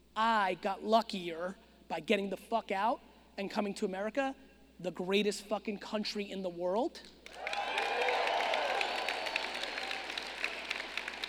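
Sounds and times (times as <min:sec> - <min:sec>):
speech: 0:00.2 - 0:07.5
large audience applauding: 0:07.3 - 0:11.2.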